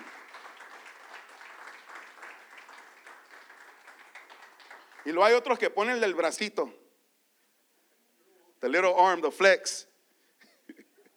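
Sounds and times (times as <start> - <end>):
crowd applauding: 0.0 - 5.9
speech: 5.0 - 6.8, 8.6 - 9.9.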